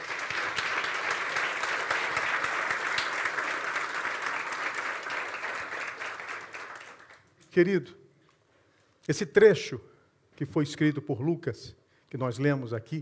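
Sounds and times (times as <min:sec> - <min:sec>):
large crowd applauding in a big room: 0:00.0 - 0:07.3
speech: 0:07.6 - 0:08.0, 0:09.1 - 0:13.0.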